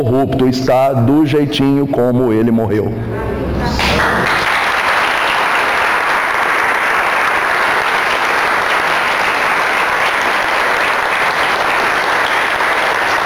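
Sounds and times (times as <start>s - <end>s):
speech: 0.0s - 4.4s
large audience applause: 3.8s - 13.2s.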